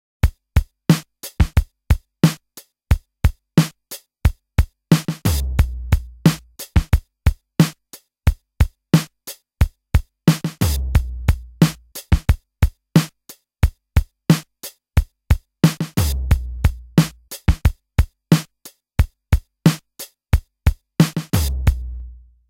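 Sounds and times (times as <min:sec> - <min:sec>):
DMX drum machine pattern: 0:00.2 - 0:22.2.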